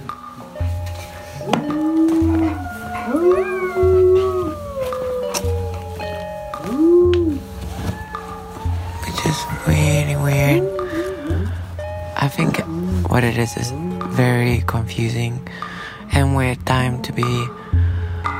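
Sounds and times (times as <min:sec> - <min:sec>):
several people howling together in Carmel Valley: 0:01.3 - 0:14.3
speech: 0:13.3 - 0:17.6.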